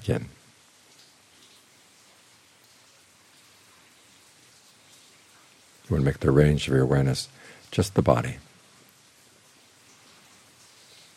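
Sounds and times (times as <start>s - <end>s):
speech: 0.0s - 0.4s, 5.9s - 8.5s
steady rain pattering on surfaces outside at night: 0.0s - 11.1s.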